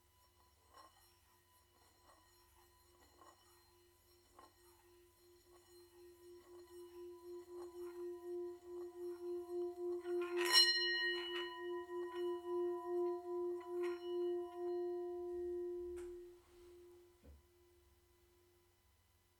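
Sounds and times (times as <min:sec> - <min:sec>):
Tibetan singing bowl rim rubbed with stick: 0:00.0 - 0:17.2
Tibetan singing bowl brief strike-like ring: 0:03.0 - 0:17.8.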